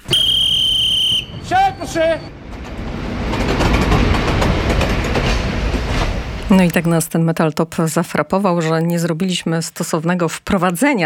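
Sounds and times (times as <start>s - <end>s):
train departing from a station platform, steady rumbling roar: 0.0s - 8.8s
speech: 1.5s - 2.4s, 6.5s - 11.0s.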